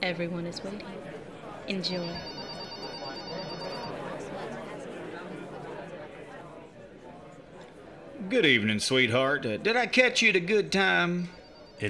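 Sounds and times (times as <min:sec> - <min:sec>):
speech: 0:00.0 - 0:01.1, 0:01.7 - 0:02.4, 0:08.2 - 0:11.8
busy call center murmur of many overlapping voices: 0:00.0 - 0:11.8
bright electronic phone ring trilling: 0:01.8 - 0:04.1, 0:11.2 - 0:11.8.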